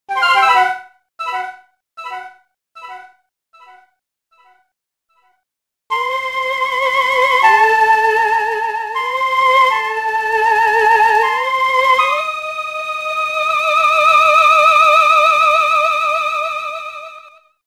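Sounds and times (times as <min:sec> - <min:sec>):
flute: 0:05.9 - 0:17.4.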